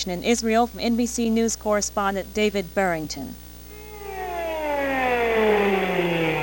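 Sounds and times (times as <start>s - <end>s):
speech: 0.0s - 3.4s
air raid siren wailing: 3.7s - 6.4s.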